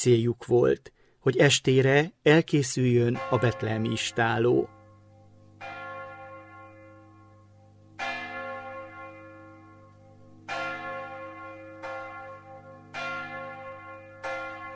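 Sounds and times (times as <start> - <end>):
speech: 0.0 - 4.8
church bell tolling the call to midnight mass: 3.0 - 14.7.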